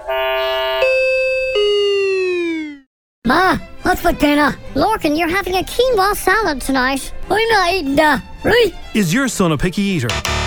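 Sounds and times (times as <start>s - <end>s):
melodic doorbell chime: 0.3s - 1.9s
speech: 3.3s - 10.3s.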